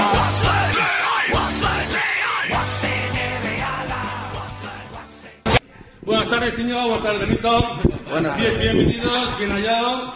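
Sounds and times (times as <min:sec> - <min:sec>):
football supporters chanting in unison at their home stadium: 0:00.0 - 0:05.6
speech: 0:06.3 - 0:10.1.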